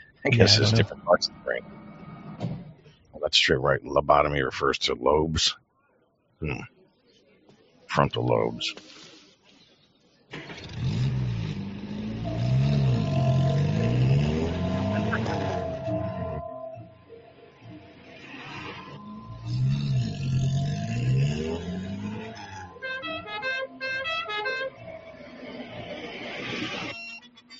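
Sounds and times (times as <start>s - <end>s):
small golf cart engines revving as the carts race: 0.0s - 3.0s, 10.3s - 26.9s
speech: 0.2s - 2.5s, 3.2s - 5.6s, 6.4s - 6.7s, 7.9s - 9.0s.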